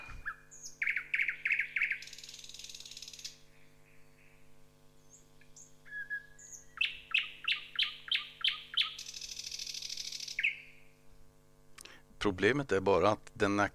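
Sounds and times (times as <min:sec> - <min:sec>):
nightingale singing: 0:00.0 - 0:04.4, 0:05.0 - 0:10.9
steady low hum: 0:00.0 - 0:13.7
speech: 0:12.2 - 0:13.7.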